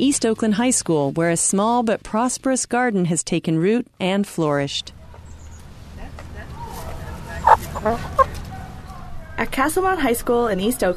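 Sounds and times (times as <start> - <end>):
speech: 0.0 - 5.0, 7.8 - 8.2, 9.4 - 10.9
steady low outdoor rumble: 4.9 - 10.8
chickens clucking in a school garden: 6.6 - 8.6.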